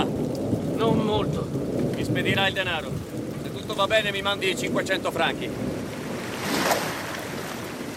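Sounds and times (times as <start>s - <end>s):
wind hiss: 0.0s - 7.9s
speech: 2.2s - 5.7s
lake waves breaking against a pier: 3.6s - 7.9s.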